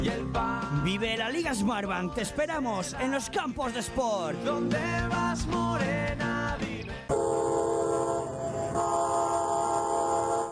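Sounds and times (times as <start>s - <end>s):
speech: 0.4s - 7.7s
train horn blaring: 7.1s - 10.5s.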